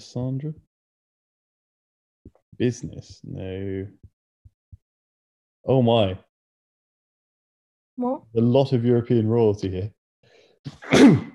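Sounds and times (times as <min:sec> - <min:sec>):
speech: 0:00.0 - 0:00.7, 0:02.6 - 0:04.1, 0:05.6 - 0:06.3, 0:08.0 - 0:10.0, 0:10.6 - 0:11.3
person sneezing: 0:10.7 - 0:11.3.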